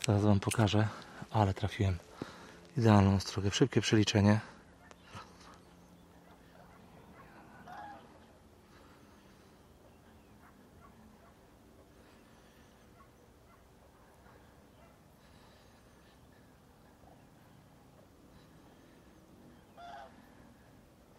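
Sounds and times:
speech: 0.0 - 2.1, 2.8 - 4.6
mixed flock of cranes and geese calling outdoors at sunset: 4.4 - 20.8.

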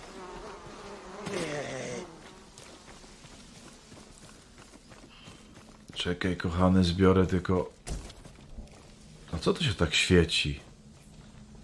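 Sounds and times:
flies buzzing: 0.0 - 4.5
speech: 6.0 - 7.8, 9.4 - 10.7.

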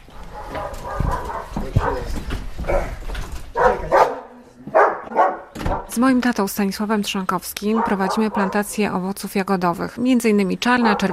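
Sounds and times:
dogs barking: 0.0 - 5.9, 7.6 - 8.8, 10.7 - 11.1
speech: 6.0 - 11.1.

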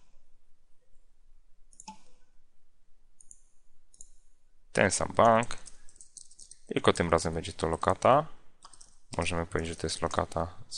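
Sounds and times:
computer mouse clicks: 1.7 - 2.2, 3.2 - 4.2, 5.2 - 6.7, 8.6 - 9.3
speech: 4.8 - 5.6, 6.7 - 8.4, 9.1 - 10.7.

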